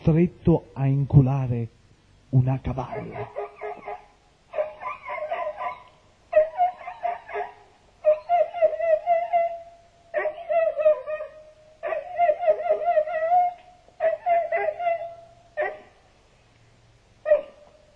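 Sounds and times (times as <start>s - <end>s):
speech: 0.0s - 3.4s
dog yelping and whimpering: 2.8s - 16.0s, 17.2s - 17.9s.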